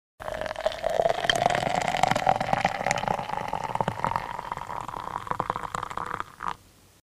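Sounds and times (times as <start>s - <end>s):
water pouring: 0.2s - 6.6s.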